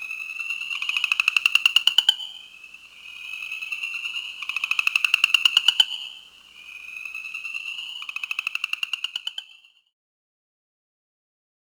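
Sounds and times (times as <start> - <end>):
New Jersey chorus frog pulsed trills: 0.0 - 9.9.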